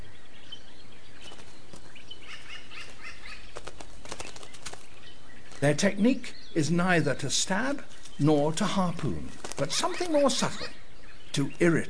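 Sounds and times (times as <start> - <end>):
faint outdoor noise: 0.0 - 11.8
crows flapping wings as they gather at a log: 1.2 - 6.0, 7.5 - 10.8
speech: 5.6 - 10.8, 11.4 - 11.8.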